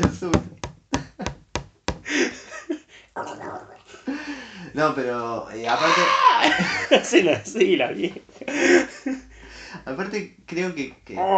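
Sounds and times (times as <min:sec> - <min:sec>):
knocks on a hard surface imitating canes tapping the floor: 0:00.0 - 0:02.1
people laughing: 0:02.1 - 0:04.6, 0:05.6 - 0:09.6
speech: 0:04.8 - 0:08.8, 0:10.0 - 0:11.3.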